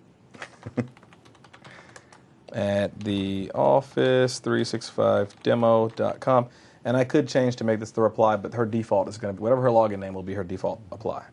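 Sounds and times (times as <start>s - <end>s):
speech: 0.7s - 1.0s, 2.5s - 11.3s
typing on a computer keyboard: 0.7s - 2.2s, 5.2s - 6.2s.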